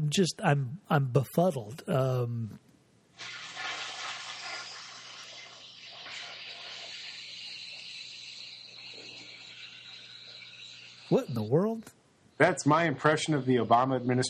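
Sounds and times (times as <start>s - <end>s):
speech: 0.1s - 2.6s, 11.1s - 14.2s
toilet flushing: 3.2s - 11.4s.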